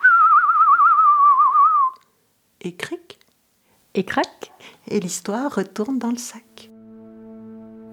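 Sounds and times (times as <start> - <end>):
person whistling a blackbird's song: 0.0 - 2.1
speech: 2.6 - 3.0, 4.0 - 6.5.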